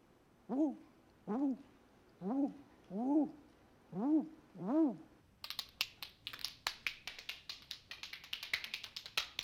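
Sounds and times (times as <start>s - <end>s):
voice imitating a barn owl call with arching hoots: 0.5s - 5.1s.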